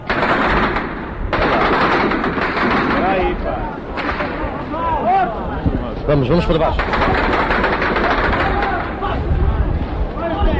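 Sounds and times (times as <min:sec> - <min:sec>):
rapid automatic weapons gunfire: 0:00.1 - 0:03.4, 0:06.8 - 0:08.9
voices calling out: 0:02.7 - 0:10.5
speech: 0:06.1 - 0:07.7.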